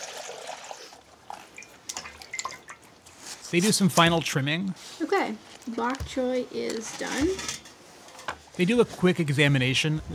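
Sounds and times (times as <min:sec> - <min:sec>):
rainwater dripping and splashing as bok choy is washed: 0:00.0 - 0:03.2
speech: 0:03.5 - 0:07.6, 0:08.6 - 0:10.1.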